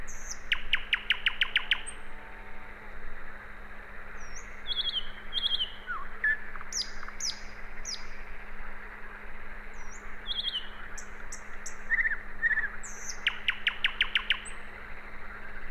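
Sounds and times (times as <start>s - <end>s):
common nightingale Luscinia megarhynchos singing varied phrases: 0.0s - 2.1s, 4.2s - 8.3s, 9.8s - 14.7s
constant low hum: 0.0s - 15.6s.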